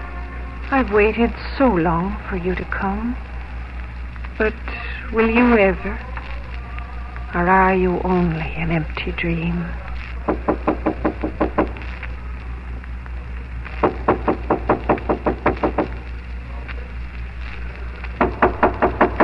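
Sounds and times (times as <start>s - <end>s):
steady low hum: 0.0s - 19.2s
speech: 0.7s - 3.3s, 4.4s - 6.1s, 7.3s - 10.6s
sharp knocks on a door: 10.3s - 11.8s, 13.8s - 15.9s, 18.2s - 19.2s.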